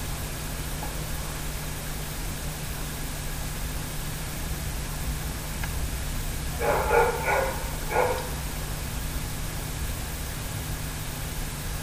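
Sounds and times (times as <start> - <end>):
steady low hum: 0.0 - 11.8
dog barking: 6.6 - 8.5.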